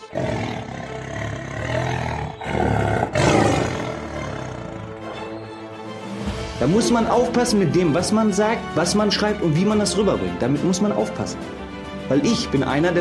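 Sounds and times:
tiger roar jingle: 0.0 - 5.1
jingle musical bed: 4.9 - 12.9
speech: 6.6 - 12.9.

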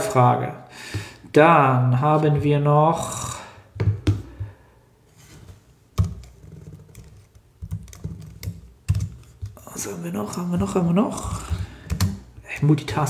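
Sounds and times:
speech: 0.1 - 3.2, 9.8 - 11.4, 12.6 - 13.0
typing on a computer keyboard: 6.9 - 9.6.

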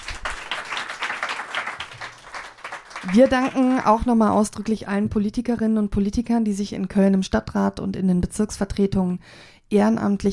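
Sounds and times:
audience applause for two politicians after a debate: 0.0 - 4.0
speech: 3.0 - 10.3.

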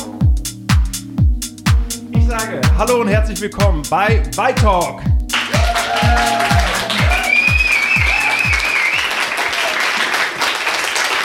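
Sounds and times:
thumping beat: 0.0 - 9.0
speech: 2.4 - 5.1
live audience applauding: 5.3 - 11.2.

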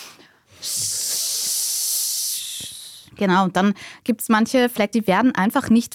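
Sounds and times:
voice imitating a spray can hiss during a breathing exercise: 0.0 - 3.2
speech: 3.2 - 5.9.

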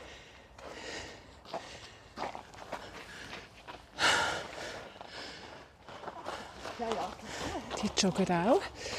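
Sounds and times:
person breathing while hanging from a horizontal bar: 0.0 - 6.6, 8.6 - 8.9
speech: 6.8 - 8.9.

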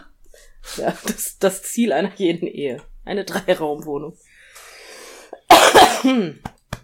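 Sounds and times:
speech: 0.8 - 4.3, 6.0 - 6.5
harsh coughing: 5.4 - 6.4.

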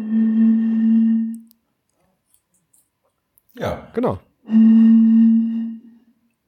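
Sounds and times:
blowing across a small bottle's mouth: 0.0 - 1.5, 4.4 - 6.2
speech: 3.6 - 4.9.

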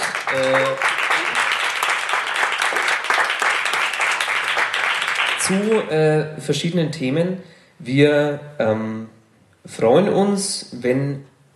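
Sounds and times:
crowd applauding: 0.0 - 5.9
speech: 0.3 - 0.9, 5.5 - 11.3.

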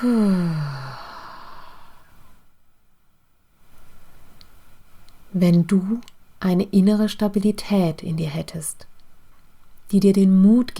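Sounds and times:
speech: 0.0 - 0.7, 5.4 - 8.9, 9.9 - 10.7
loud sighing exhale through the mouth during a guided breathing exercise: 0.0 - 2.4
soft breath in through the nose: 0.0 - 2.5.

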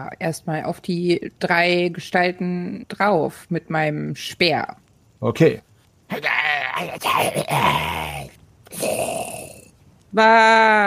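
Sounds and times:
speech: 0.0 - 9.4, 10.1 - 10.8
man in a role-playing game giving a held-back groaning battle cry: 6.1 - 9.7.

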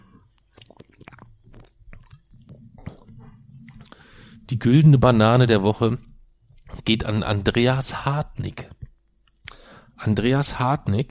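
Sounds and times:
person sipping a malt drink: 0.0 - 4.5, 8.8 - 9.8
speech: 4.5 - 6.1, 6.8 - 8.8, 10.0 - 11.0.

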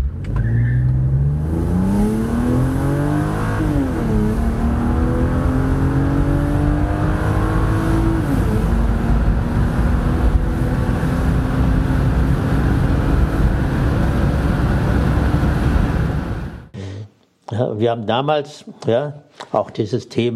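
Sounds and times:
AMG car engine revving through gears on a test drive: 0.0 - 16.7
speech: 17.8 - 20.3.

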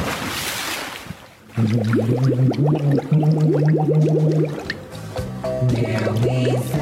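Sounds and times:
splash of a person jumping into water: 0.0 - 2.4
water bubbling: 1.5 - 4.9, 5.8 - 6.8
voice singing a song underwater: 1.6 - 4.8, 5.6 - 6.8.

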